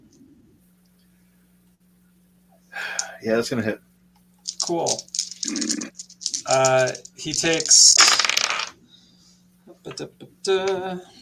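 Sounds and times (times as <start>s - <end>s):
speech: 2.7s - 3.9s, 4.7s - 8.0s, 10.0s - 11.2s
dice rolling across a hard surface: 4.5s - 8.8s.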